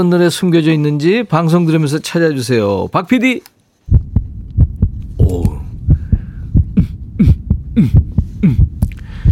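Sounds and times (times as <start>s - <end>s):
speech: 0.0s - 4.0s
heartbeat thumping: 3.9s - 9.3s.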